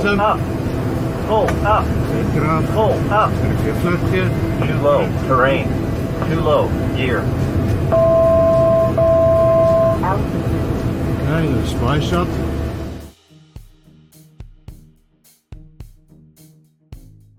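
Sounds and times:
speech: 0.0 - 0.6, 1.3 - 8.1, 11.3 - 12.4
Embraer jet flying very low over a stadium: 0.0 - 13.2.

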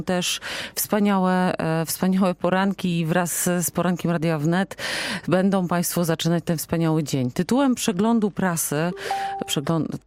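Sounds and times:
speech: 0.0 - 10.0
computer notification beep: 8.9 - 9.7.

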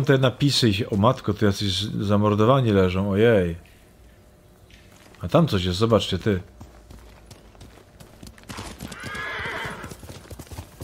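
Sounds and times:
speech: 0.0 - 3.7, 5.2 - 6.6
horse hooves clopping: 4.7 - 10.8
horse whinnying in a long wavering neigh: 8.6 - 10.0.

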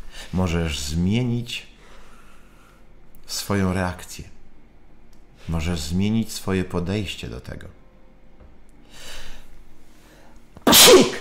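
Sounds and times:
speech: 0.3 - 1.7, 3.3 - 4.3, 5.5 - 7.8
sneeze: 10.6 - 11.2.

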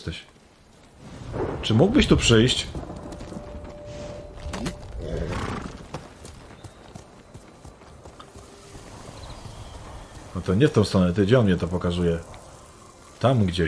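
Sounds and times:
speech: 0.0 - 0.4, 1.3 - 2.9, 10.4 - 12.4, 13.2 - 13.6
horse hooves clip-clopping in a video game: 2.7 - 13.2
horse whinny in a video game: 5.0 - 6.0.

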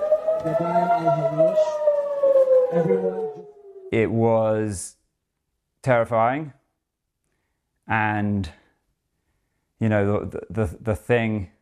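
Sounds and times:
loud air raid siren wailing: 0.0 - 4.2
speech: 0.4 - 1.8, 2.7 - 5.0, 5.8 - 6.6, 7.9 - 8.6, 9.8 - 11.5.

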